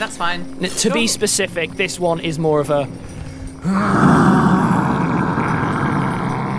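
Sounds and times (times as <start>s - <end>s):
speech: 0.0s - 4.3s
person's voice performing a weary frustrated monster roar: 3.6s - 6.5s.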